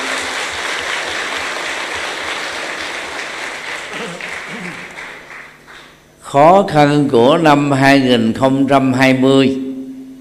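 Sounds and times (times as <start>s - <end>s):
large crowd applauding: 0.0s - 6.0s
speech: 6.3s - 9.6s.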